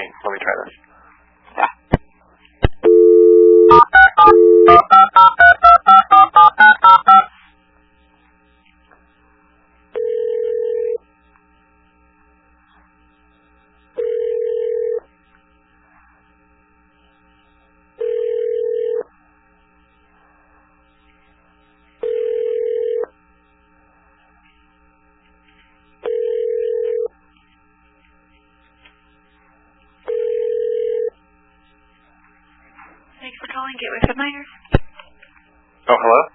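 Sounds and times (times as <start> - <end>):
speech: 0.0 - 0.9
phone line ringing back: 2.8 - 7.3, 9.9 - 11.0, 14.0 - 15.0, 18.0 - 19.1, 22.0 - 23.1, 26.0 - 27.1, 30.1 - 31.1
touch-tone dialing beeps for a telephone extension: 2.9 - 7.3.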